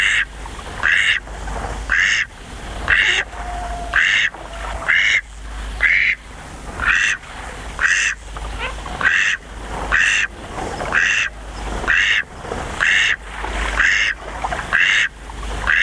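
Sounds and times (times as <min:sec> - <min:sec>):
Eastern spot-billed duck giving harsh nasal quacks: 0:00.0 - 0:01.2, 0:01.9 - 0:02.3, 0:02.9 - 0:06.2, 0:06.8 - 0:07.2, 0:07.8 - 0:10.3, 0:10.9 - 0:13.2, 0:13.8 - 0:15.8.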